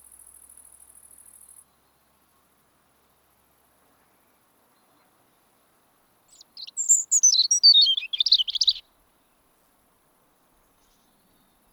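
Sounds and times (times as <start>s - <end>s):
European robin autumn song of very high thin notes and jumbled twitter: 6.3s - 8.8s.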